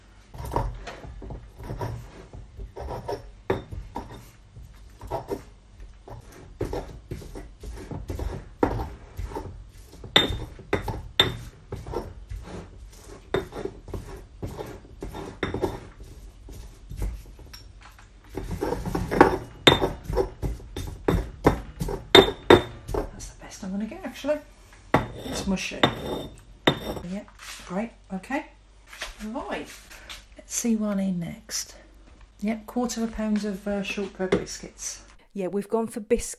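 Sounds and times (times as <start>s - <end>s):
pestle knocking and grinding in a mortar crushing a softened orange: 0.3s - 17.6s, 18.3s - 23.2s, 24.9s - 27.1s
speech: 24.2s - 24.5s, 25.5s - 26.4s, 27.1s - 28.4s, 30.6s - 31.7s, 32.4s - 36.3s.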